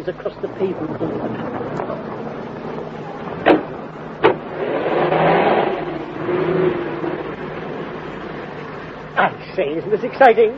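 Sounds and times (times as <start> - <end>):
speech: 0.0 - 2.1, 9.2 - 10.5
car engine revving up and pulling away: 0.0 - 10.2
two sharp thumps: 1.6 - 6.4.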